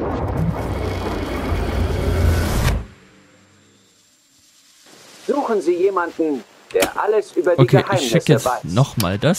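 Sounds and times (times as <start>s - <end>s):
car engine roaring: 0.2s - 3.6s
speech: 5.4s - 9.3s.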